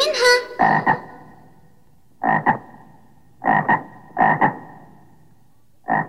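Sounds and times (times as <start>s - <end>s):
frog croaking: 0.0s - 1.6s, 2.2s - 5.2s, 5.8s - 6.0s.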